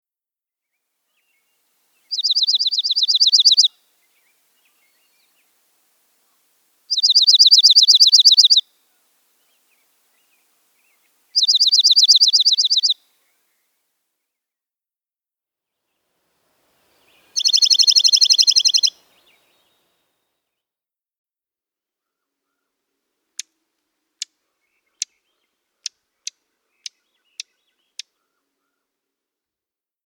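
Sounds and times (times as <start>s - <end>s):
slate-colored Dark-eyed Junco calling: 2.1s - 3.7s, 6.9s - 8.6s, 11.4s - 13.0s, 17.2s - 19.4s.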